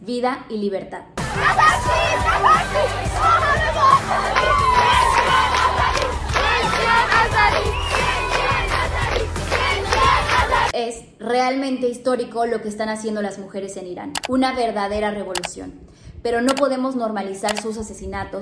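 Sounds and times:
speech: 0.1 - 5.1, 10.7 - 18.4
large group of schoolgirls shouting and chanting slogans: 1.3 - 10.8.

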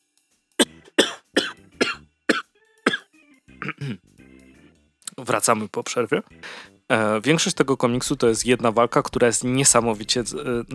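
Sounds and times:
throat clearing: 0.6 - 3.0, 3.6 - 4.0
person coughing: 0.6 - 4.0
speech: 3.6 - 4.1, 5.2 - 10.7.

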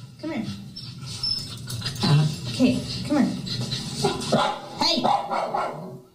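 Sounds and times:
speech: 0.3 - 0.7, 2.6 - 3.7, 4.3 - 5.8
single dog barking: 4.0 - 6.0.

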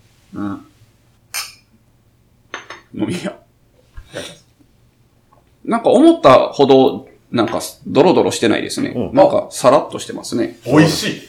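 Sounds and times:
speech: 0.3 - 0.7, 3.0 - 3.4, 5.7 - 11.2
glasses of mixed juice clinking in a toast: 1.3 - 1.8, 2.5 - 2.9.

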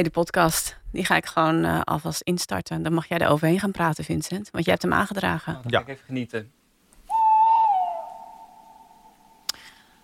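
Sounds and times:
speech: 0.0 - 6.6
owl hooting at sunrise on the Veluwe in the Netherlands: 7.1 - 9.4.

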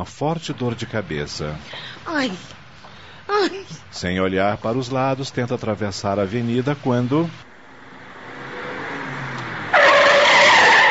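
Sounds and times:
speech: 0.0 - 2.6, 3.3 - 7.5
speeding car engine on an avenue: 7.4 - 10.9
car tires squealing while skidding: 7.7 - 10.9.

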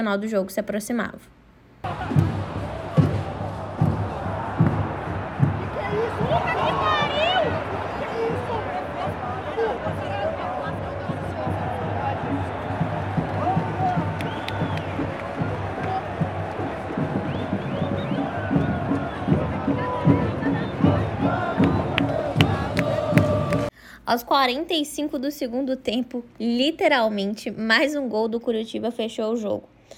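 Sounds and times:
speech: 0.0 - 2.2, 24.1 - 29.9
huge football stadium crowd roaring and shouting: 1.8 - 23.7.

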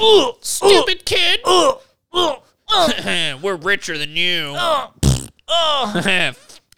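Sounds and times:
speech: 0.0 - 6.5
loud sputtering fart: 5.0 - 5.4, 6.5 - 6.7.

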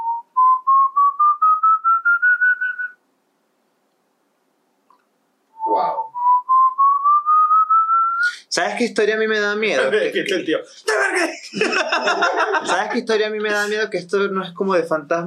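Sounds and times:
person whistling rising pulsed notes imitating the Silbón's eerie whistle: 0.0 - 3.0, 5.6 - 8.4
speech: 8.6 - 15.2
laughter: 10.8 - 13.7.

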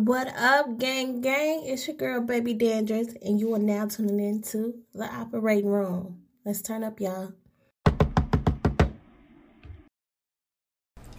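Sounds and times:
speech: 0.0 - 7.4
knocking on a door: 7.8 - 9.1.

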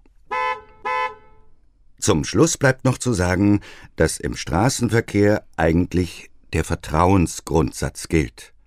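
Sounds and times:
car horn honks: 0.3 - 1.5
speech: 2.0 - 8.5.

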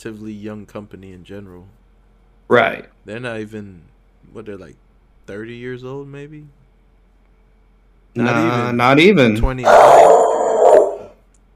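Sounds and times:
speech: 0.0 - 1.8, 2.5 - 6.6, 8.2 - 10.2
dog barking: 9.6 - 11.2.

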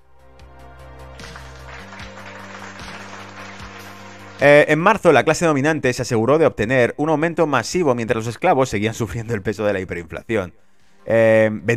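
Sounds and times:
crowd applauding: 1.0 - 4.8
speech: 4.4 - 11.7.

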